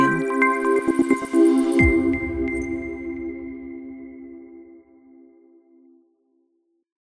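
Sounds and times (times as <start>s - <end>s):
ambient tech logo jingle: 0.1s - 4.4s.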